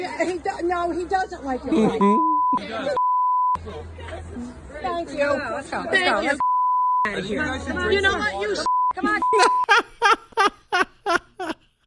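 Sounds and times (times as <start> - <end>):
speech: 0.0 - 3.0, 3.6 - 6.4, 7.0 - 10.2
laughter: 1.7 - 2.6, 9.0 - 11.7
person imitating beeps: 1.7 - 2.6
phone beeping: 1.8 - 3.6, 8.7 - 9.7.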